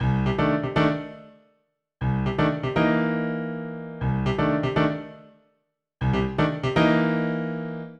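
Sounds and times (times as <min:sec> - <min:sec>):
nu jazz grand piano in C major: 0:00.0 - 0:01.3, 0:02.0 - 0:05.2, 0:06.0 - 0:07.9.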